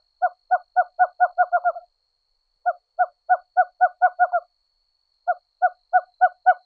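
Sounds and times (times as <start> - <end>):
western screech owl hooting in bouncing-ball rhythm: 0.2 - 1.9, 2.6 - 4.5, 5.3 - 6.6.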